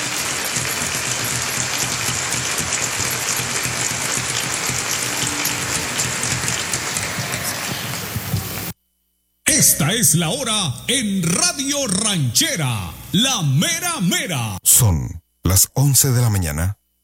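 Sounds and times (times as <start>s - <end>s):
crowd applauding: 0.0s - 8.7s
speech: 9.6s - 16.8s.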